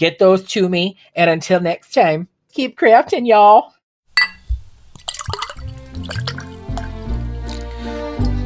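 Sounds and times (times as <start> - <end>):
speech: 0.0 - 3.8
glass clink: 4.2 - 6.9
sherry being poured into a glass: 4.2 - 8.4.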